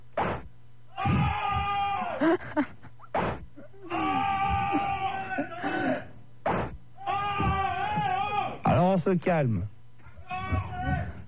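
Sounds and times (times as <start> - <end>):
whip cracks: 0.2 - 0.5, 6.4 - 6.8
several people screaming and wailing as they are whipped: 1.0 - 2.4, 3.9 - 6.0, 7.0 - 8.7, 10.2 - 11.2
speech: 2.2 - 2.8, 9.0 - 9.7.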